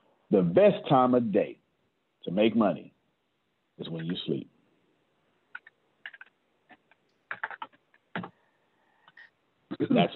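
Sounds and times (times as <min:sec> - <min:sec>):
speech: 0:00.3 - 0:01.6, 0:02.2 - 0:02.9, 0:03.8 - 0:04.5, 0:09.8 - 0:10.1
typing on a computer keyboard into a chat: 0:05.5 - 0:06.3, 0:07.3 - 0:07.8.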